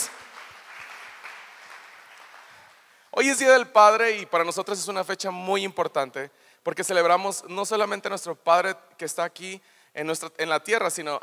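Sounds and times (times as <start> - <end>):
audience applauding: 0.0 - 3.0
speech: 3.2 - 11.2.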